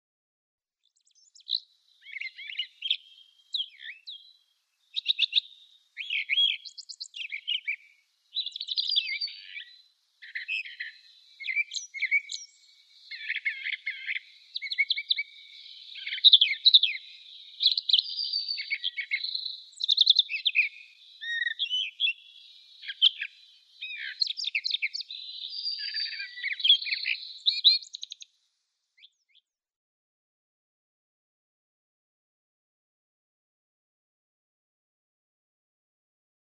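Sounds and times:
Brown Thrasher singing: 0:00.8 - 0:28.3, 0:29.0 - 0:29.6.

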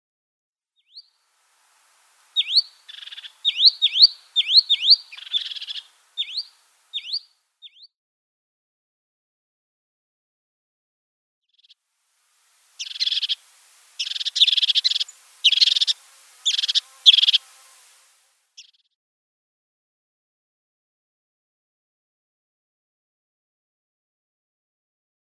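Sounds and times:
Tenerife blue tit calls: 0:02.3 - 0:07.9, 0:12.7 - 0:18.0.

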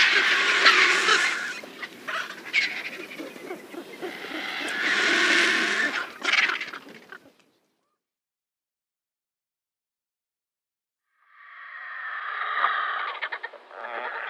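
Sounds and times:
griffon vulture making loud hoarse hissing squeals: 0:00.0 - 0:03.2, 0:04.0 - 0:06.2, 0:11.3 - 0:14.2
griffon vulture rougher grating calls: 0:00.0 - 0:07.4, 0:11.6 - 0:14.2.

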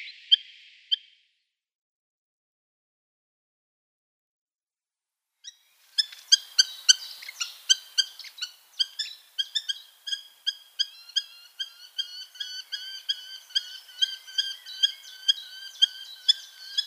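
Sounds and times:
Eurasian hobby giving sharp high calls: 0:06.0 - 0:16.8.

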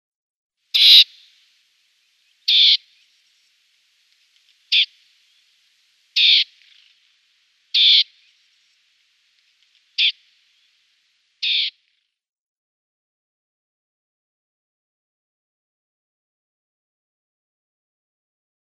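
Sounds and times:
Dartford Warbler calls: 0:00.7 - 0:01.4, 0:02.2 - 0:11.8.

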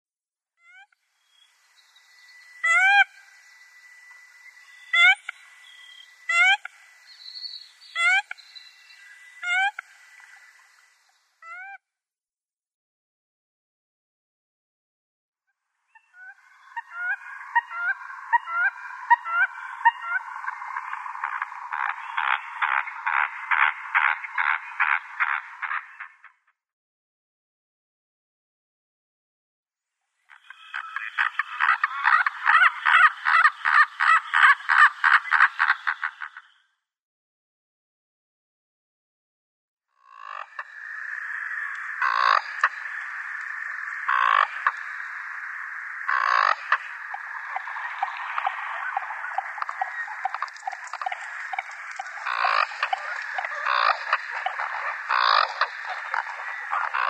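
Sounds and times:
American Coot: 0:01.3 - 0:11.7, 0:15.9 - 0:26.3, 0:30.3 - 0:36.5, 0:40.1 - 0:57.0.

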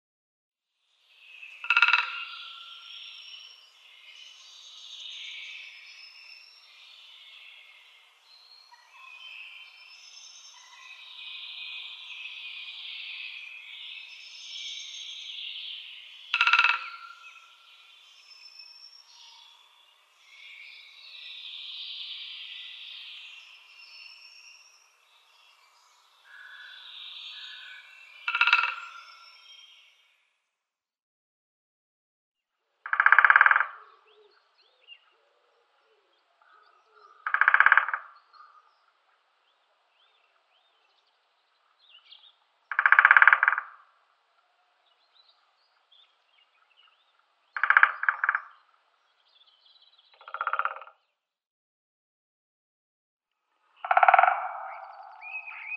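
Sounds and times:
Great Spotted Woodpecker drumming: 0:01.6 - 0:02.3, 0:16.3 - 0:17.3, 0:28.3 - 0:28.8, 0:32.9 - 0:33.8, 0:37.2 - 0:38.1, 0:42.7 - 0:43.8, 0:47.6 - 0:48.5, 0:50.2 - 0:50.9, 0:53.8 - 0:54.8.

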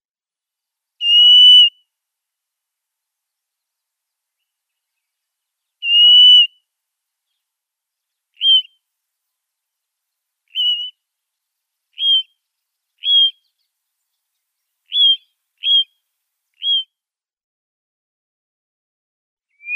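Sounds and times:
Blue-naped Mousebird calls: 0:01.0 - 0:01.8, 0:04.4 - 0:06.6, 0:08.1 - 0:08.8, 0:10.5 - 0:16.0, 0:16.6 - 0:16.9, 0:19.6 - 0:19.7.

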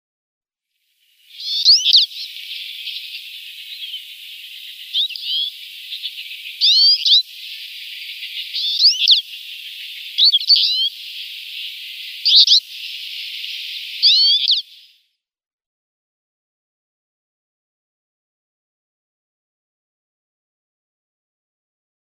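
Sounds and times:
twite singing rambling song: 0:01.3 - 0:15.0.

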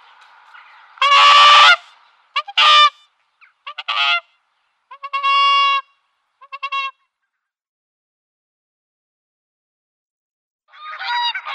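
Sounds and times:
whooper swan honking and trumpeting: 0:00.0 - 0:07.0, 0:10.7 - 0:11.5.

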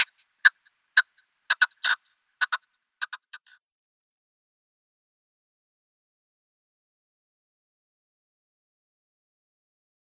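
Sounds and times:
male red-legged partridge rasping display call: 0:00.0 - 0:03.6.

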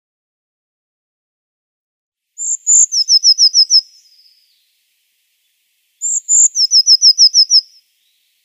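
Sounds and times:
Eurasian blue tit song: 0:02.4 - 0:04.8, 0:05.4 - 0:08.4.

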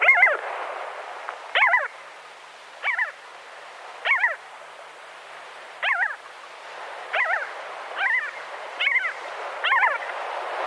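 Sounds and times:
Arctic skua giving nasal wavering calls at the nest: 0:00.0 - 0:00.4, 0:01.5 - 0:02.0, 0:02.8 - 0:03.2, 0:04.0 - 0:04.4, 0:05.8 - 0:06.2, 0:07.1 - 0:10.2
background hiss: 0:00.0 - 0:10.6.

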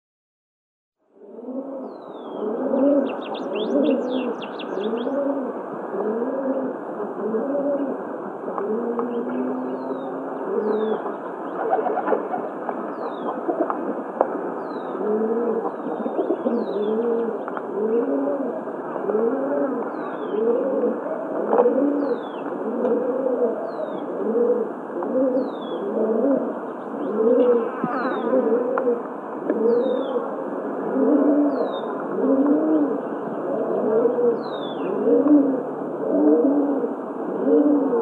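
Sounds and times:
rock pigeon: 0:01.1 - 0:38.0.

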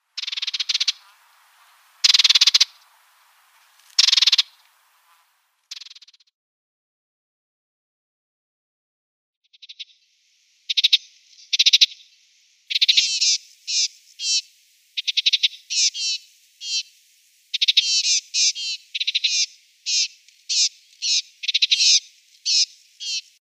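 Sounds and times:
Melodious Warbler calls: 0:00.1 - 0:06.2, 0:09.5 - 0:23.4.

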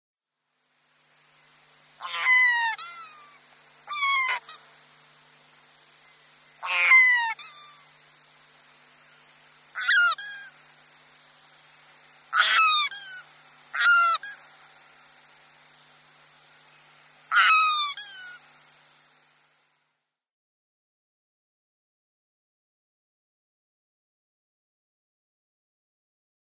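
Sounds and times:
Light-mantled Albatross: 0:02.0 - 0:04.7, 0:06.6 - 0:07.9, 0:09.7 - 0:10.6, 0:12.3 - 0:14.5, 0:17.3 - 0:18.5.

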